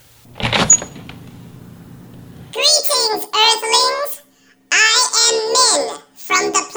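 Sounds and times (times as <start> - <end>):
door swinging open with scrape, thud and squeak: 0.0 - 2.3
faint low rumble of room noise: 0.0 - 6.6.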